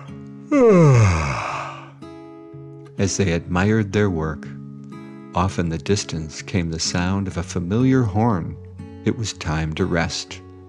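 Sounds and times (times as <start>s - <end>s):
drawn-out yawn voiced for a construction-vehicle character in a children's story: 0.0s - 2.0s
speech: 0.5s - 1.3s, 3.0s - 4.6s, 5.3s - 10.4s.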